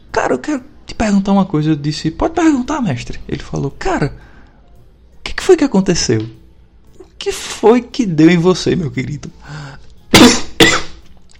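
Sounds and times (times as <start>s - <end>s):
speech: 0.3s - 4.3s, 5.5s - 6.4s, 7.2s - 10.4s
person coughing harshly: 10.1s - 11.0s.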